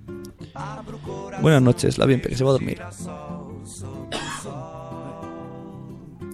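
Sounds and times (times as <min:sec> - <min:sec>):
speech: 0:00.6 - 0:03.3
person coughing hoarsely: 0:04.1 - 0:04.5.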